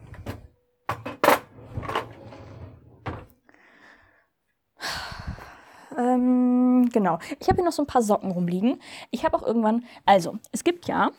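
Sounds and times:
cutlery drawer sliding and bumping shut: 0.0s - 3.3s
speech: 6.0s - 11.1s.

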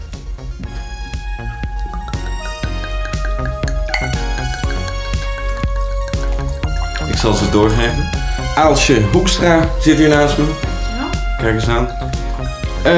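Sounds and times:
wine drips: 0.0s - 12.9s
wine pouring into glasses: 0.0s - 12.9s
small glass clinks: 1.9s - 8.3s
speech: 7.2s - 10.7s, 11.4s - 12.0s.

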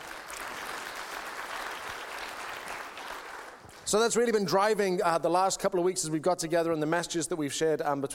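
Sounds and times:
audience applauding: 0.0s - 4.1s
speech: 3.9s - 8.1s.

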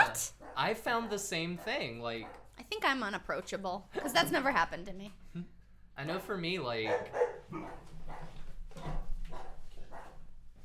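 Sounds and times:
dog barking: 0.4s - 2.5s, 6.8s - 10.2s
speech: 0.6s - 9.0s.

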